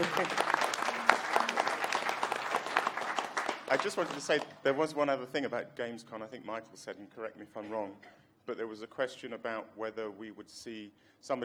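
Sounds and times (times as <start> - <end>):
audience applauding: 0.0 - 4.9
speech: 3.7 - 11.4.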